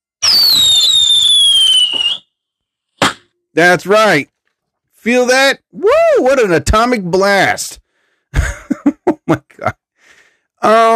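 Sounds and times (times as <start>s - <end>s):
shrill whistling firework: 0.2s - 2.4s
speech: 3.6s - 4.3s, 5.0s - 9.8s, 10.6s - 10.9s
laughter: 8.4s - 9.7s.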